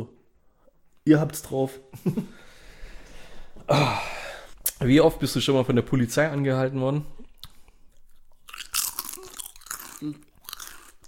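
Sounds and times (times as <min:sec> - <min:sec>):
speech: 0:01.0 - 0:02.4, 0:03.6 - 0:04.1, 0:04.8 - 0:07.2, 0:10.0 - 0:10.2
crunchy food being chewed noisily: 0:07.4 - 0:11.0.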